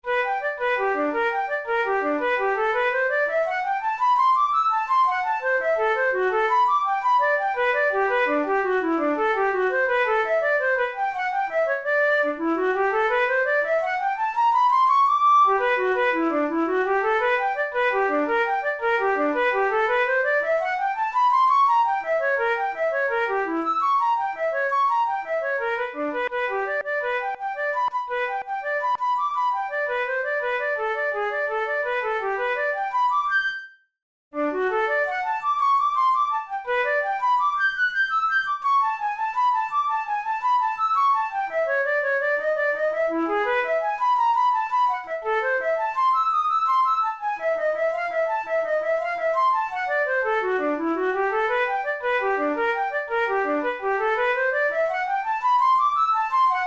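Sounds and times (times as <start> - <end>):
flute playing finger exercise: 0.0 - 56.6.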